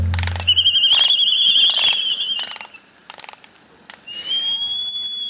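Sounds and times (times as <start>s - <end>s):
albatross calling: 0.1s - 5.2s.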